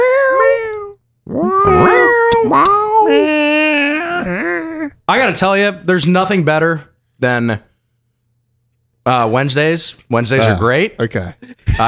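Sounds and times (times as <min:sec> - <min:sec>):
little cat meowing: 0:00.0 - 0:04.9
speech: 0:02.5 - 0:03.6, 0:05.1 - 0:07.7, 0:09.0 - 0:11.8.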